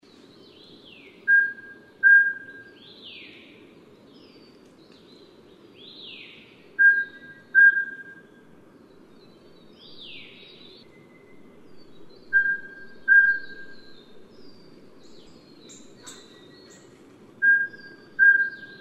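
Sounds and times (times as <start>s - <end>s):
Mountain scops owl: 1.3s - 2.7s, 6.8s - 8.3s, 12.3s - 13.9s, 15.7s - 18.7s.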